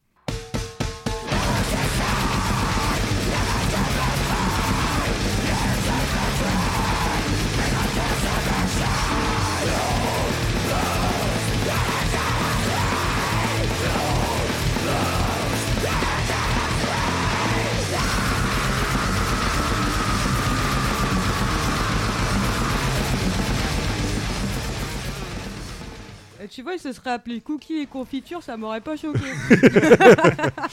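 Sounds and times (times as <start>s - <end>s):
pummeling drums in grindcore music: 0.3s - 24.2s
distorted guitars in grindcore music: 0.3s - 26.4s
harsh screamed vocals in grindcore music: 1.3s - 25.2s
speech: 26.6s - 30.7s
laughter: 29.0s - 30.7s.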